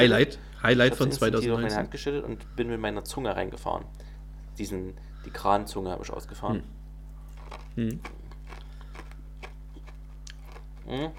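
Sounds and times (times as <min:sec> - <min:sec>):
speech: 0:00.0 - 0:06.8, 0:07.8 - 0:08.2, 0:10.9 - 0:11.1
low constant hum: 0:00.0 - 0:11.1
chewing crunchy colored sugar candy: 0:07.2 - 0:11.1.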